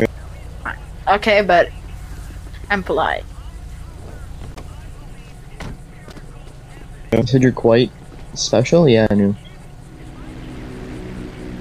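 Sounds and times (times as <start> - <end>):
speech: 0.0 - 1.8, 2.7 - 3.3, 7.1 - 9.4
airplane engine drone passing overhead: 0.0 - 11.5.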